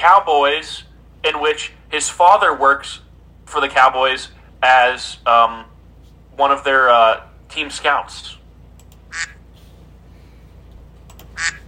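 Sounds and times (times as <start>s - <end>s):
speech: 0.0s - 5.7s, 6.4s - 8.4s, 9.1s - 9.4s, 11.4s - 11.6s
faint low hum: 0.0s - 11.6s
duck quacking: 9.1s - 9.4s, 11.4s - 11.6s.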